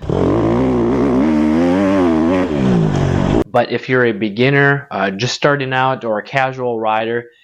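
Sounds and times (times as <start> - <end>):
CRF150R dirt bike engine revving loudly: 0.0 - 3.5
speech: 3.6 - 7.4.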